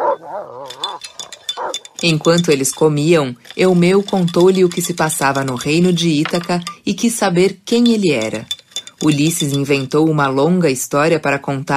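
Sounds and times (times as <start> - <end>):
dog barking: 0.0 - 1.0
dog whining: 0.0 - 1.8
speech: 2.0 - 11.7.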